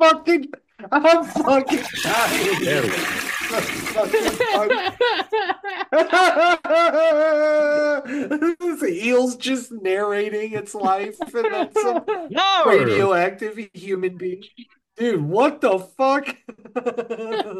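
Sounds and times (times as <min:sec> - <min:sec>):
speech: 0:00.0 - 0:17.5
voices talking and laughing: 0:00.8 - 0:09.0, 0:10.2 - 0:13.3
toilet flushing with rushing gurgling burst: 0:01.3 - 0:05.0.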